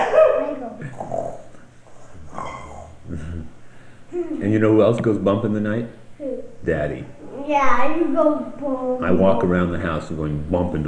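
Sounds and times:
voice imitating snoring: 0.8 - 1.5, 2.2 - 3.5
speech: 4.5 - 6.0, 6.6 - 10.8.

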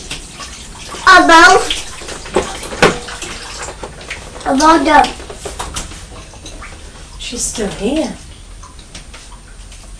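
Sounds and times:
tap water running while washing hands: 0.0 - 9.9
child's voice: 1.0 - 1.8, 4.4 - 5.2
speech: 1.2 - 1.7, 4.5 - 5.2, 7.3 - 8.2.

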